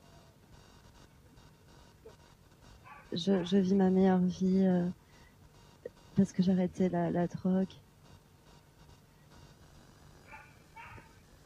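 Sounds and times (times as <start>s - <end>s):
low hiss: 0.0s - 11.4s
puppy yipping high-pitched: 2.8s - 3.6s, 10.3s - 11.2s
speech: 3.1s - 5.0s, 6.2s - 7.8s.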